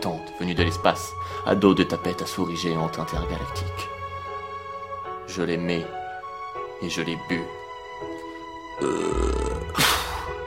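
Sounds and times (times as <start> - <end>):
speech: 0.0 - 4.0, 5.3 - 6.0, 6.8 - 8.2, 8.8 - 9.9
long drawn-out burp: 8.8 - 10.3.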